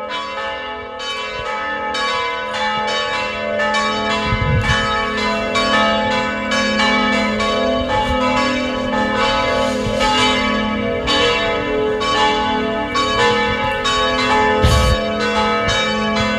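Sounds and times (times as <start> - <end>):
church bells pealing: 0.0 - 16.3.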